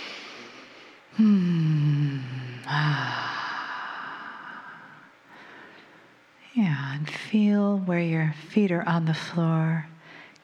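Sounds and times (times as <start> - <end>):
deep breath in and out during a guided relaxation exercise: 0.0 - 6.2
speech: 1.2 - 1.4, 7.3 - 9.9.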